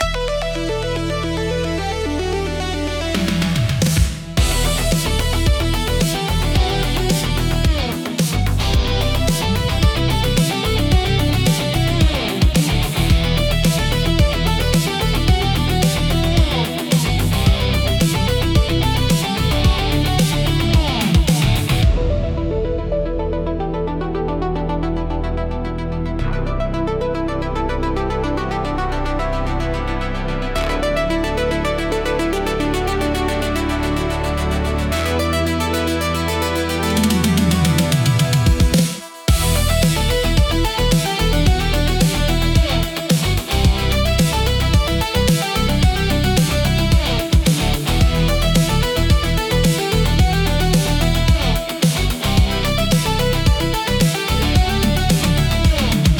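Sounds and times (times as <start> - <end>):
energetic high energy synthwave music: 0.0 - 56.1
funky guitar: 3.2 - 23.0, 36.5 - 56.1.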